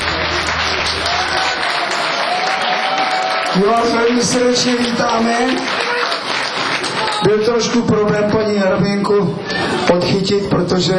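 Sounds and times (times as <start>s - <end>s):
large audience clapping: 0.0s - 8.0s
speech: 3.6s - 5.8s, 7.2s - 10.9s.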